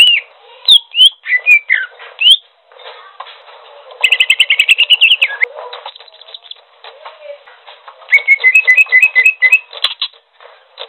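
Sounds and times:
greater green leafbird singing slurred whistles: 0.0s - 2.4s, 4.0s - 5.5s, 8.1s - 10.0s.

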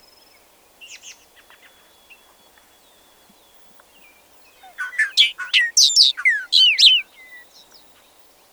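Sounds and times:
bobolink song with bubbling metallic notes: 4.7s - 7.4s.

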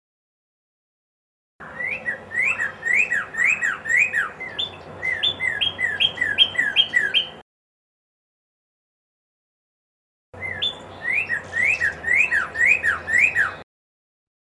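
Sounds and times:
red-crested cardinal song: 1.6s - 7.4s, 10.4s - 13.6s.

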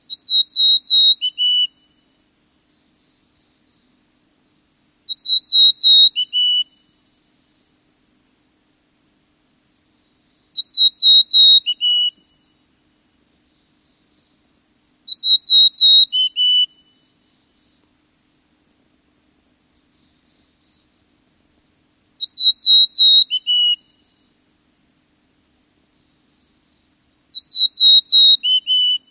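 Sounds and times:
mountain chickadee calling: 0.0s - 2.2s, 5.0s - 7.0s, 10.0s - 12.6s, 15.0s - 17.9s, 22.1s - 24.4s, 25.9s - 29.0s.

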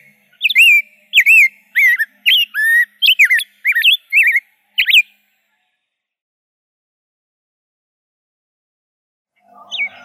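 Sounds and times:
rose-breasted grosbeak singing sweet slurred whistled phrases: 0.0s - 5.1s, 9.6s - 10.0s.

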